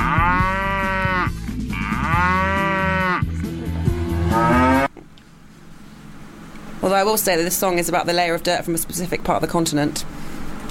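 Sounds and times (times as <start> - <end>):
cow mooing loudly: 0.0 - 4.9
speech: 6.9 - 10.2.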